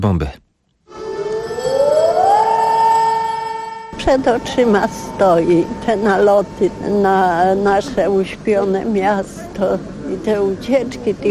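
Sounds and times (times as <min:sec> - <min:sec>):
speech: 0:00.0 - 0:00.4, 0:04.0 - 0:11.2
air raid warning siren wailing over a town: 0:00.9 - 0:08.6.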